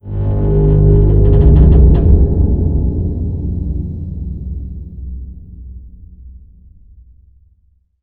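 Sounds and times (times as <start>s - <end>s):
bridge groaning: 0.0s - 5.6s.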